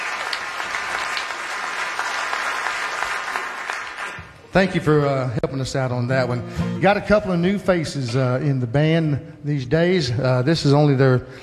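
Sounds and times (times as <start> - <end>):
audience applause at a live band show: 0.0 - 4.4
sharp claps: 0.0 - 4.4
speech: 4.5 - 11.4.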